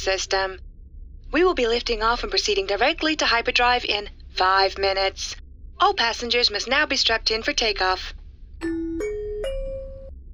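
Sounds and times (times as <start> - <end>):
speech: 0.0 - 0.7, 1.3 - 8.7
faint low hum: 0.0 - 10.3
two-tone chime bell: 8.6 - 10.1.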